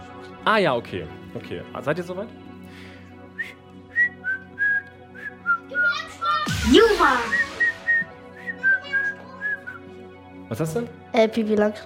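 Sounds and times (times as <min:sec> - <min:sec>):
speech: 0:00.4 - 0:03.6, 0:06.6 - 0:07.4, 0:10.5 - 0:11.8
person whistling a cheerful children's song melody: 0:03.4 - 0:06.0, 0:06.7 - 0:09.9.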